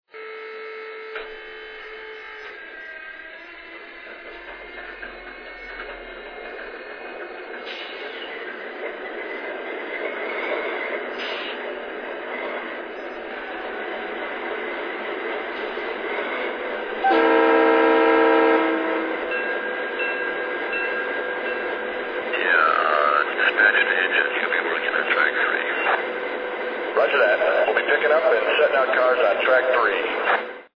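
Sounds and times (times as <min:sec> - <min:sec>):
GE Dash 8 locomotive: 0:00.1 - 0:30.7.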